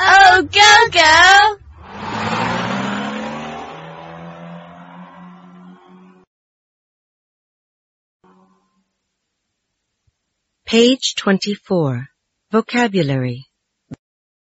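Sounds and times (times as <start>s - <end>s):
bus engine revving and pulling away: 0.0s - 6.3s, 8.3s - 8.7s
speech: 10.7s - 13.5s.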